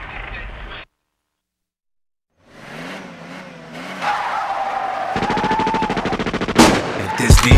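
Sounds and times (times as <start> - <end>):
car engine revving: 2.4 - 6.6
rapid drive-by gunshots: 5.2 - 7.5.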